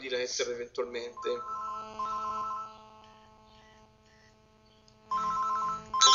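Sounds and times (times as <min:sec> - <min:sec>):
speech: 0:00.1 - 0:01.6
electronic telephone ringtone signalling an incoming call: 0:01.2 - 0:02.8, 0:05.1 - 0:06.1.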